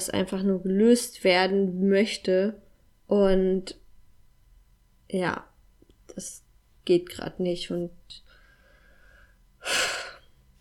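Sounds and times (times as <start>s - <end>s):
speech: 0.0s - 3.8s, 5.1s - 5.5s, 6.1s - 8.2s, 9.6s - 10.0s
deep inhaled breath: 8.3s - 10.2s.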